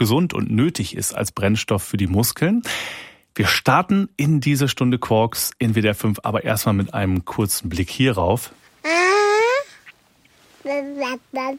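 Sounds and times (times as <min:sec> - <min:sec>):
speech: 0:00.0 - 0:08.6, 0:10.6 - 0:11.5
baby babbling: 0:08.8 - 0:09.9, 0:10.6 - 0:11.5.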